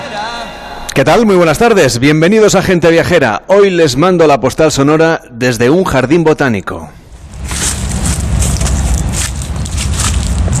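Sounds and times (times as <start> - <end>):
speech: 1.0 - 7.8
trucks passing on the A12 motorway: 7.1 - 10.5
footsteps crunching dry fallen leaves in a botanical garden: 7.2 - 10.5.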